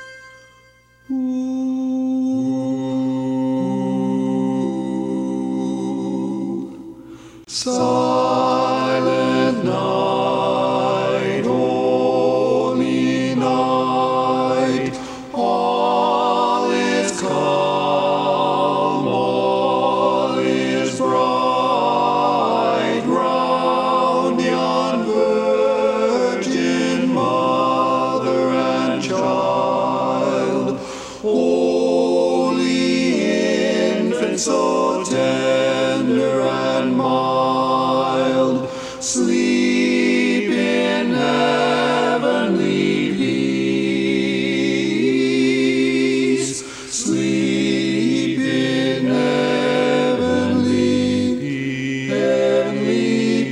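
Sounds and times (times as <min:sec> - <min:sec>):
baritone singing a cappella: 0:01.1 - 0:53.5.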